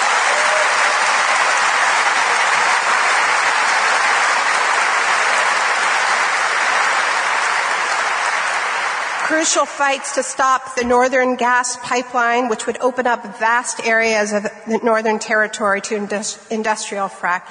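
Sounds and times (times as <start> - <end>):
audience applause: 0.0 - 10.0
speech: 9.3 - 17.4.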